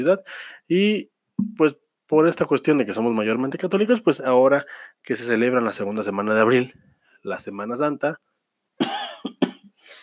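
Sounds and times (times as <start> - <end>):
speech: 0.0 - 9.4
person coughing: 8.8 - 10.0.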